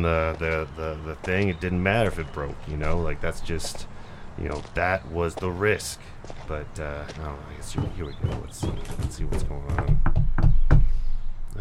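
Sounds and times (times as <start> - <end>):
speech: 0.0 - 10.6
knocking on a door: 7.7 - 10.9.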